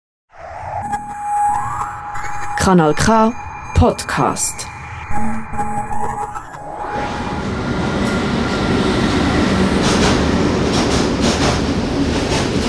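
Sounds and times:
quiet mechanical hum and tonal whine: 0:00.4 - 0:12.6
speech: 0:02.6 - 0:06.2
train rumbling into a railway station: 0:06.7 - 0:12.6.

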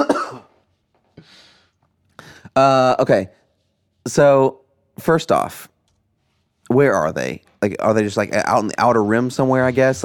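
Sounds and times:
person coughing: 0:00.0 - 0:00.6
speech: 0:02.6 - 0:03.4, 0:04.0 - 0:05.7, 0:06.7 - 0:10.0.

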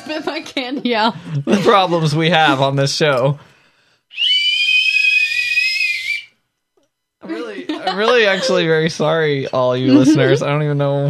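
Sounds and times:
speech: 0:00.1 - 0:03.5, 0:08.0 - 0:11.0
laughter: 0:01.3 - 0:02.8, 0:07.2 - 0:10.5
two whistles blown together in a shrill steady blast: 0:04.1 - 0:06.4.

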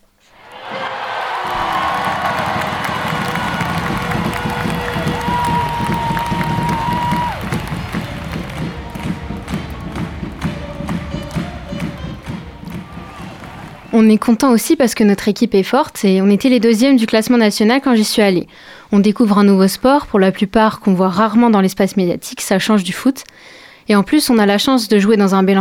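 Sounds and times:
ice hockey crowd in Angers chanting and cheering after a goal: 0:00.2 - 0:14.3
scattered claps: 0:00.3 - 0:14.0
brief horn-like tone: 0:00.7 - 0:14.0
speech: 0:14.0 - 0:25.5.

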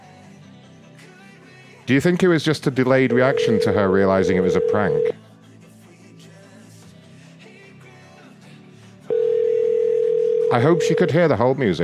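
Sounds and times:
speech: 0:01.9 - 0:05.2, 0:10.5 - 0:11.8
telephone dial tone while dialing a call: 0:03.1 - 0:05.1, 0:09.1 - 0:11.0.

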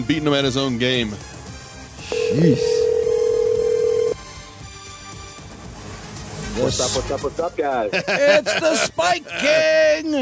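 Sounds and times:
speech: 0:00.0 - 0:01.3, 0:02.0 - 0:02.8, 0:06.6 - 0:10.2
telephone line beep: 0:02.1 - 0:04.2
laughter: 0:07.8 - 0:09.8.

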